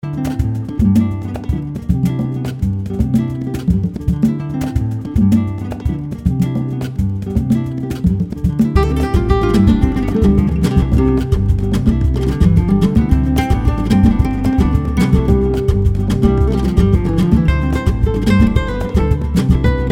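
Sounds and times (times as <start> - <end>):
flamenco guitars playing: 0.0 - 19.9.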